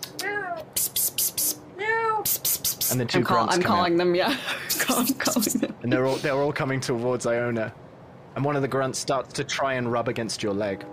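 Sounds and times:
person mimicking a cat's meow: 0.2 - 1.0, 1.8 - 2.9
speech: 2.3 - 7.8, 8.4 - 10.9.

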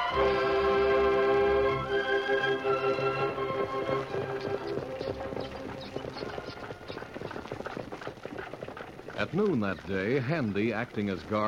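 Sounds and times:
horse hooves pulling a buckboard along a trail: 0.2 - 11.4
speech: 9.2 - 11.4.

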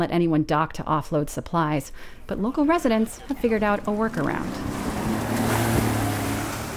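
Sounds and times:
speech: 0.0 - 5.5
wind: 0.0 - 6.7
boat engine droning off Lahaina: 2.7 - 6.7
wash and splash of ocean water: 3.0 - 6.7.

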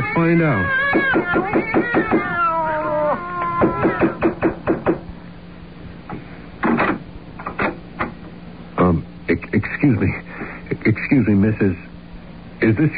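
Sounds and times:
several cats meowing and yowling behind an apartment door: 0.0 - 4.5
speech: 0.2 - 2.5, 3.6 - 4.6, 9.5 - 10.2, 11.1 - 11.9, 12.6 - 12.9
knocks and clattering: 0.8 - 2.4, 3.6 - 5.0, 6.6 - 8.4.

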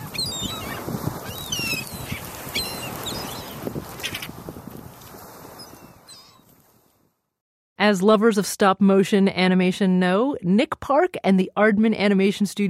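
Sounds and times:
flock of seagulls calling: 0.0 - 4.3, 5.6 - 6.5
speech: 7.8 - 12.6.

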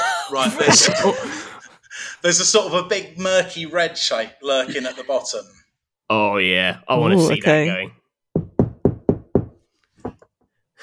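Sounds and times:
laughter: 0.0 - 2.6, 4.5 - 5.4
speech: 0.3 - 1.5, 2.2 - 8.0
knocking sound effect like knuckle on wooden door: 8.3 - 10.2.

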